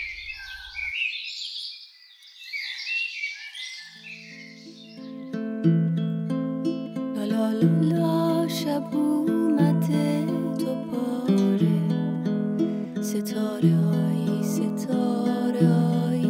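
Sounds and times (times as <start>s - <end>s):
flock of sparrows chattering in a large mulberry tree: 0.0s - 6.8s
soft sustained music tones: 4.1s - 16.2s
speech: 8.7s - 11.3s.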